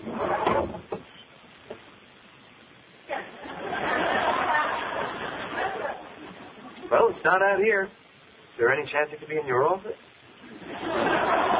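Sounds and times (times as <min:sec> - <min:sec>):
desk drawers sliding open and banging shut: 0:00.0 - 0:01.0
laughter: 0:03.3 - 0:07.0, 0:10.4 - 0:11.5
speech: 0:07.2 - 0:08.0, 0:08.6 - 0:10.1.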